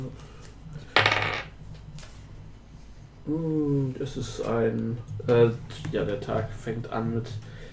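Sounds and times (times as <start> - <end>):
dice clattering and rolling across a hard table: 0.9 - 1.6
speech: 3.3 - 7.6.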